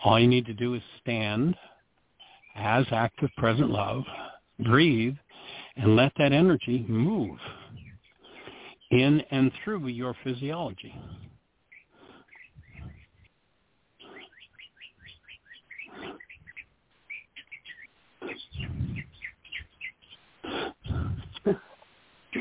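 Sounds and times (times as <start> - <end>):
speech: 0.0 - 1.7, 2.6 - 7.6, 8.9 - 11.2
birds chirping outside: 0.0 - 22.4
lower rough bird calls: 2.2 - 4.6, 7.4 - 22.4.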